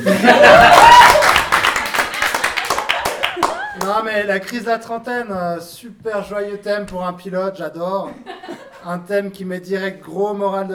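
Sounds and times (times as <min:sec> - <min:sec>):
speech: 0:00.0 - 0:00.7, 0:04.0 - 0:10.7
laughter: 0:00.0 - 0:01.2, 0:08.0 - 0:08.9
small audience clapping: 0:00.0 - 0:04.6
rising whoop: 0:00.5 - 0:01.4.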